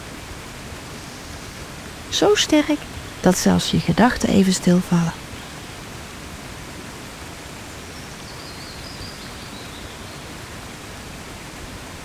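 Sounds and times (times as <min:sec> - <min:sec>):
rushing water of a waterfall roaring: 0:01.9 - 0:07.8
speech: 0:02.1 - 0:05.2.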